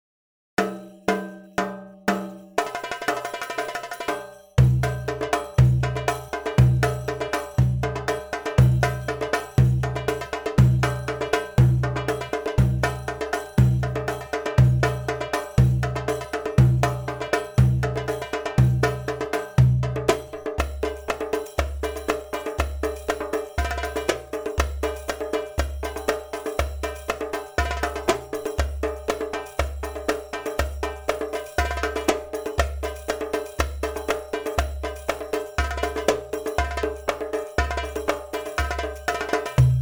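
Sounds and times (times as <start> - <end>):
drum solo at 120 bpm: 0.6 - 39.8.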